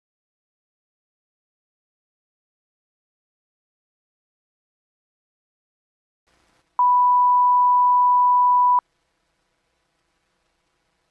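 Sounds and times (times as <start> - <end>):
1 kHz sine tone sampled at 12 kHz at 12 bit: 6.8 - 8.8.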